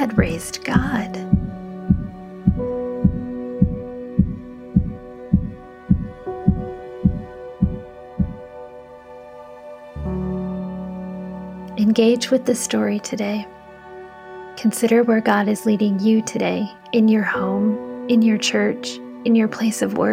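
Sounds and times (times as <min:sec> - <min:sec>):
speech: 0:00.1 - 0:01.2, 0:12.0 - 0:13.6, 0:14.6 - 0:20.1
heavy pounding heartbeat sound effect: 0:00.2 - 0:08.4.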